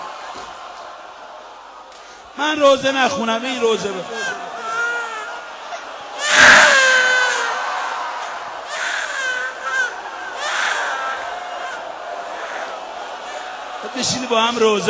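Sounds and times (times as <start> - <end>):
speech: 2.4 - 4.6, 14.0 - 14.8
baby crying and fussing: 4.1 - 13.4.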